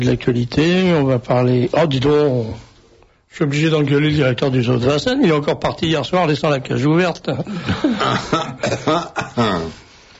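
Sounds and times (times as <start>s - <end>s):
speech: 0.0s - 2.7s, 3.3s - 9.8s
person coughing harshly: 7.7s - 9.7s.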